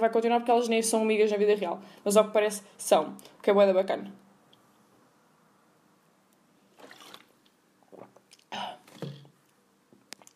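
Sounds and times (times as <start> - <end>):
speech: 0.0 - 4.2
person drinking water: 6.7 - 9.4.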